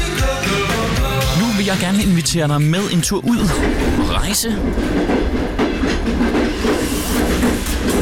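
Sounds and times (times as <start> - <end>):
train rumbling on rails: 0.7 - 8.0
speech: 1.7 - 5.4
train wheels clickety-clack on rails: 3.4 - 8.0.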